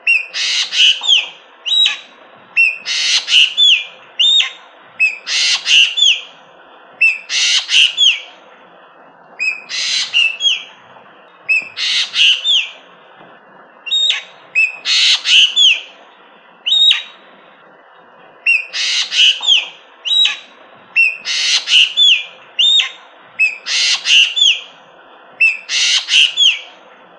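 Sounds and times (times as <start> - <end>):
Javan green magpie harsh scratchy squawks and clear whistled notes: 0.0 - 6.3, 7.0 - 8.3, 9.4 - 10.7, 11.5 - 12.8, 13.9 - 15.9, 16.7 - 17.2, 18.5 - 24.7, 25.4 - 26.7.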